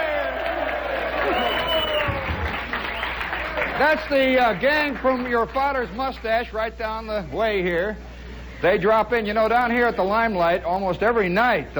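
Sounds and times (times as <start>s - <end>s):
large audience crowd cheering and shouting: 0.0s - 3.0s
speech: 3.8s - 11.7s.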